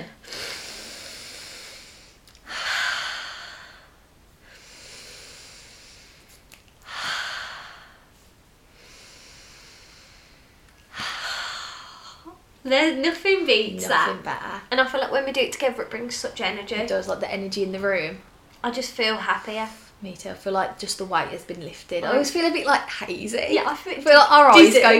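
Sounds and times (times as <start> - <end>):
deep breaths drawn in and let out: 0.2 - 12.3
speech: 12.7 - 24.9.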